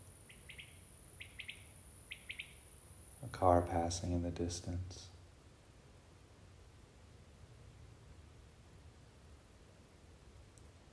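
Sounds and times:
small bird giving high chirps: 0.0s - 3.2s
soft steady hiss: 0.0s - 10.9s
speech: 3.3s - 5.1s.

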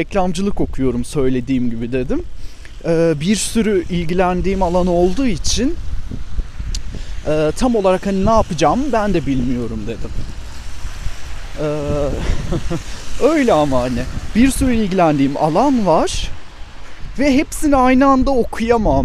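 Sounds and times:
speech: 0.0s - 6.3s, 6.9s - 10.4s, 11.6s - 16.4s, 17.2s - 19.0s
wind buffeting the microphone outdoors on a nature walk: 0.0s - 19.0s
woman laughing: 12.1s - 13.0s.

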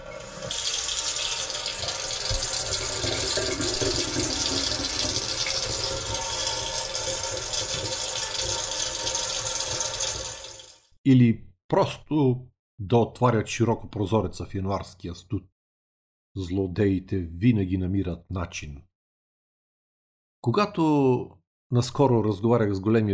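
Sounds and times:
water gushing from a tap: 0.0s - 10.9s
speech: 11.1s - 15.5s, 16.4s - 18.9s, 20.4s - 23.1s.

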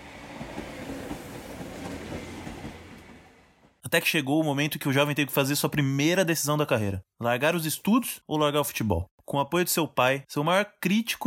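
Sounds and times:
train rumbling along the rails: 0.0s - 3.8s
speech: 3.9s - 11.2s.

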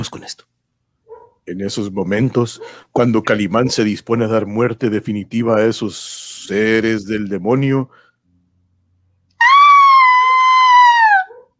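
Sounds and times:
speech: 0.0s - 0.5s, 1.5s - 8.0s
woman screaming: 9.4s - 11.5s.

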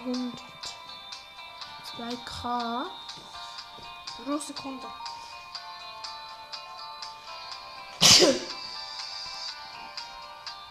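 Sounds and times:
speech: 2.0s - 3.0s, 4.2s - 5.1s
sneeze: 8.0s - 8.6s.

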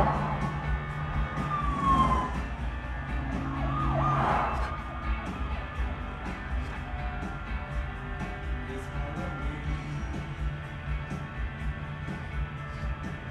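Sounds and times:
emergency vehicle sirens wailing through dense traffic: 0.0s - 9.2s
engine and road noise of dense traffic: 0.0s - 13.2s.

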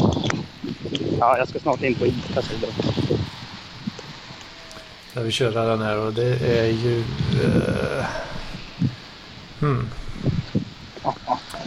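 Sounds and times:
wind blowing outdoors: 0.0s - 11.6s
speech: 1.2s - 3.0s, 5.2s - 8.3s, 9.6s - 10.0s
voice: 5.2s - 8.6s, 9.6s - 10.2s.

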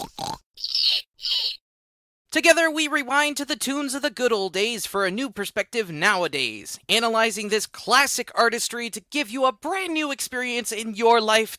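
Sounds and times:
pet pig grunting and snorting: 0.0s - 0.8s
speech: 2.4s - 11.5s.

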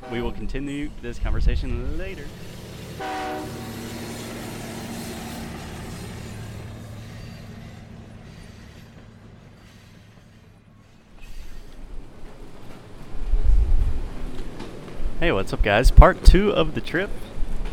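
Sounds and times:
train horn blast: 0.0s - 0.6s, 2.9s - 4.3s
train rumbling: 0.0s - 17.7s
speech: 0.1s - 3.8s, 15.2s - 17.3s.

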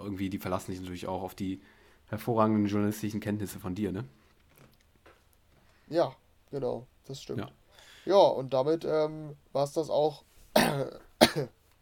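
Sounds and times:
speech: 0.2s - 4.2s, 5.9s - 11.6s
throat clearing: 10.6s - 11.6s.

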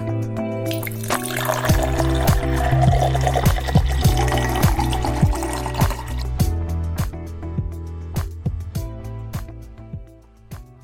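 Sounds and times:
musical intro with sustained tones and light percussive taps: 0.0s - 9.9s
whisky pouring into a glass: 0.7s - 6.4s.

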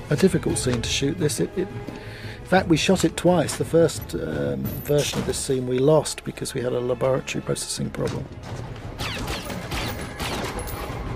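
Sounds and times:
speech: 0.1s - 9.3s
gunshots in a film scene of a clandestine buy: 8.9s - 10.8s.

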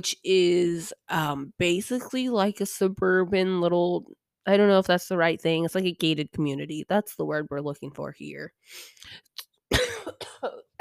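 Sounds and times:
speech: 0.0s - 9.3s, 10.0s - 10.7s
choking coughs from choking on saliva: 9.7s - 10.7s.

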